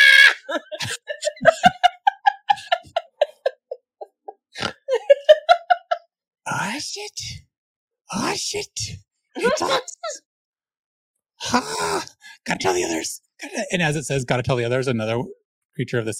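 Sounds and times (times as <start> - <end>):
voice imitating a tiny insect screaming: 0.0 - 0.5
laughter: 0.0 - 7.1, 9.4 - 10.2
speech: 8.5 - 9.8, 12.6 - 16.1.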